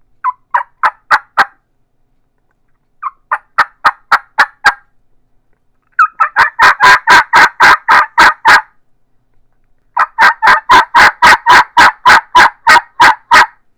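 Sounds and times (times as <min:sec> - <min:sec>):
batwing turkey call yelps: 0:00.2 - 0:01.6, 0:03.0 - 0:04.8, 0:05.9 - 0:08.7, 0:10.0 - 0:13.6.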